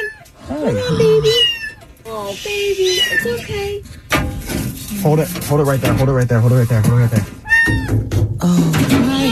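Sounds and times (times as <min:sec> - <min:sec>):
trapped cat meowing in drawn-out wavering cries: 0:00.0 - 0:02.0, 0:02.8 - 0:03.8, 0:07.4 - 0:08.0
speech: 0:00.6 - 0:01.5, 0:02.2 - 0:04.0, 0:05.0 - 0:09.2.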